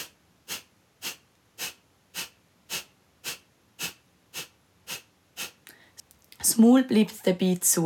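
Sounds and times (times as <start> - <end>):
sharp bursts of air forced out through the nose in a breathing exercise: 0.0 - 6.0
speech: 6.5 - 7.8.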